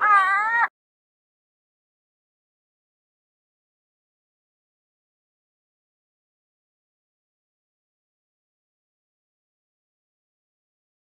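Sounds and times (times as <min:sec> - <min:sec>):
gull: 0:00.0 - 0:00.7.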